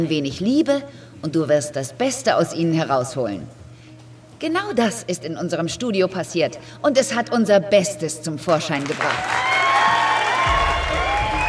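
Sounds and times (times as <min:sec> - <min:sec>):
speech: 0:00.0 - 0:03.6, 0:04.4 - 0:09.5
applause in a packed room: 0:08.8 - 0:11.4
packed room of people cheering: 0:09.0 - 0:11.4
whistling tones: 0:10.7 - 0:11.4.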